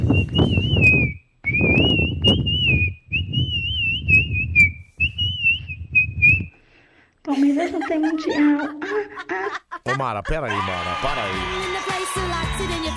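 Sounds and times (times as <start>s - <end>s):
person whistling a wavering continuous tune: 0.0s - 6.6s
laughter: 7.3s - 12.0s
speech: 10.0s - 12.9s.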